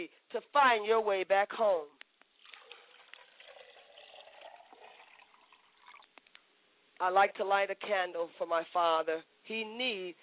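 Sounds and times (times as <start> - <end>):
speech: 0.0 - 2.0, 7.0 - 10.2
water pouring into a glass container: 2.4 - 6.1.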